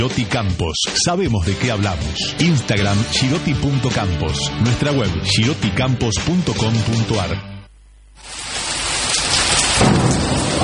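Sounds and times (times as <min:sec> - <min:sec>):
speech: 0:00.0 - 0:07.5
steady rain hissing: 0:07.7 - 0:10.6
deep rolling rumble of thunder: 0:08.5 - 0:10.6.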